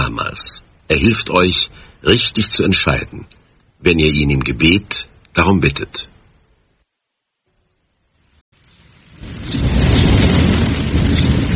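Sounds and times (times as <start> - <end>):
speech: 0.0 - 6.1
steady hiss of rain: 0.0 - 11.5
rolling thunder of a severe thunderstorm: 8.6 - 11.5.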